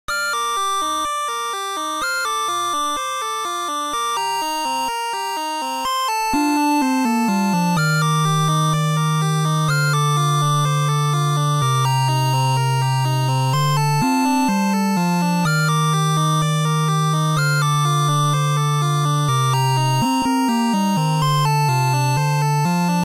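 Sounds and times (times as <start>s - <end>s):
music in a village forest: 0.1s - 23.0s.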